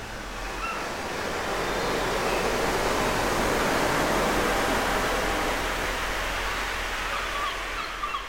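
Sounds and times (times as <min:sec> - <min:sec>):
slowed-down ocean waves: 0:00.0 - 0:07.8
faint high bird-like cries: 0:07.1 - 0:08.2.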